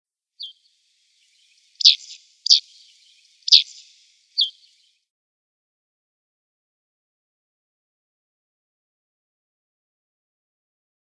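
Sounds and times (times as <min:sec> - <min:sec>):
Black-headed Bunting calling: 0:00.4 - 0:04.9.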